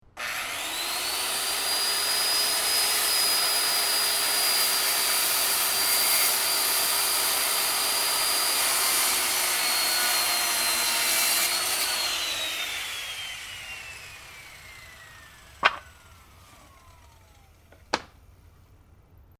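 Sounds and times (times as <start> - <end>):
circular saw: 0.1 - 17.9.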